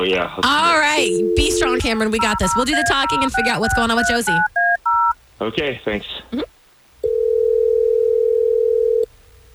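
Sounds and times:
speech: 0.0 - 4.6, 5.4 - 6.5
faint low noise: 0.0 - 9.5
steady telephone dial tone while a call is placed: 0.8 - 5.2, 7.0 - 9.1.

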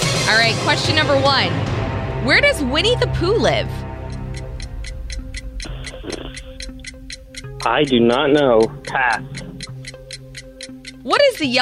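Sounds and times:
low droning tonal background: 0.1 - 11.6
speech: 0.3 - 3.8, 7.6 - 9.5, 11.0 - 11.6
clock timer ticking: 3.6 - 11.6.

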